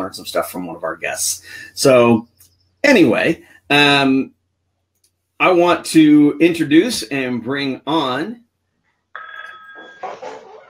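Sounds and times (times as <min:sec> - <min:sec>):
speech: 0:00.1 - 0:04.4, 0:05.4 - 0:08.4
telephone ringing: 0:09.2 - 0:10.6.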